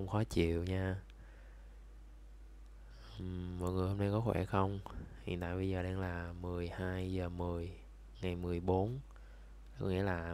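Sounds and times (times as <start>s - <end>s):
speech: 0.0s - 1.1s, 3.2s - 9.1s, 9.8s - 10.3s
electric fan buzzing in the room: 0.0s - 10.3s.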